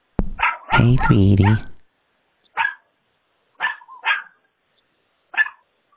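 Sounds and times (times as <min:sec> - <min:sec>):
dog barking: 0:00.3 - 0:01.1, 0:02.6 - 0:02.9, 0:03.6 - 0:04.4, 0:05.3 - 0:05.6
speech: 0:00.8 - 0:01.7.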